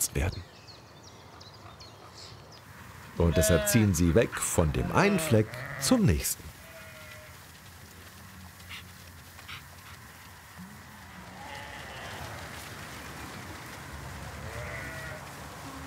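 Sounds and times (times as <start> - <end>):
steady outdoor hiss: 0.0 - 15.8
speech: 0.2 - 0.5, 3.2 - 6.5
flock of sheep bleating: 3.2 - 4.1, 4.7 - 7.4, 11.1 - 12.5, 14.4 - 15.8.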